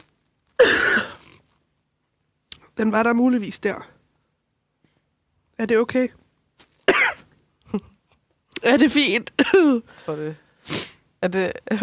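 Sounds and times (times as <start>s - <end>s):
throat-clearing cough: 0.6s - 1.2s, 6.9s - 7.9s
speech: 2.8s - 4.0s, 5.6s - 6.2s, 6.9s - 7.9s, 8.6s - 11.8s.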